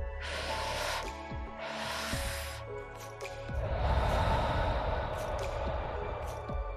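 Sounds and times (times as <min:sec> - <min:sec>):
quick sharp breaths drawn in through the nose: 0:00.0 - 0:06.7
long slow airy exhale: 0:00.2 - 0:02.7, 0:03.6 - 0:06.7.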